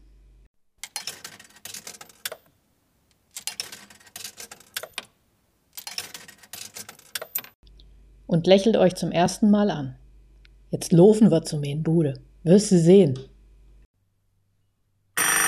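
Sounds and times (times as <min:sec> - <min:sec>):
coins dropping into a coin-operated payphone: 0:00.8 - 0:02.5, 0:03.3 - 0:05.1, 0:05.8 - 0:07.6
speech: 0:08.3 - 0:10.0, 0:10.7 - 0:13.3.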